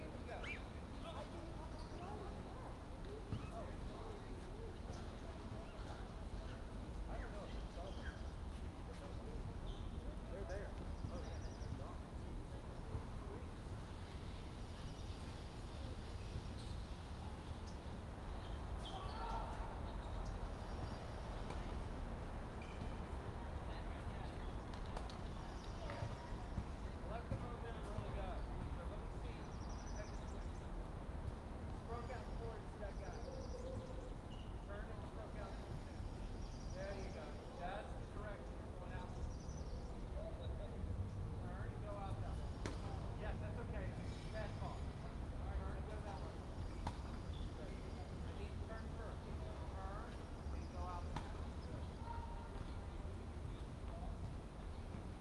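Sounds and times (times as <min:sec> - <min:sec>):
birds in a city park: 0:00.0 - 0:02.5, 0:03.2 - 0:23.1, 0:23.7 - 0:54.1
close tennis lesson voices in a city park: 0:00.0 - 0:55.1
distant city traffic: 0:00.0 - 0:55.1
distant basketball in a city park: 0:24.7 - 0:28.7.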